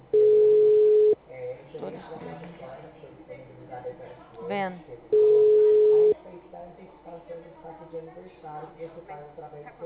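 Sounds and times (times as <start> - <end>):
telephone dial tone while placing a call: 0.2 - 1.2
speech: 4.5 - 5.5, 6.6 - 9.8.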